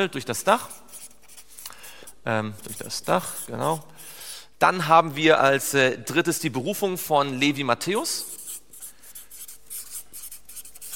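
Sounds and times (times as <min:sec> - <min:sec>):
speech: 0:00.0 - 0:01.0, 0:02.2 - 0:08.4
drying-out pen scratching across paper while writing notes: 0:00.4 - 0:01.6, 0:02.6 - 0:04.0, 0:08.3 - 0:10.9.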